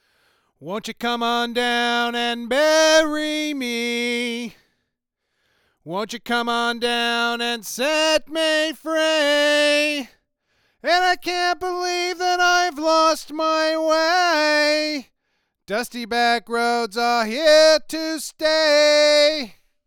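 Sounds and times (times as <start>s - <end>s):
vocals recorded on a stock figure-8 Apex460 microphone: 0.0s - 4.8s, 5.7s - 19.8s.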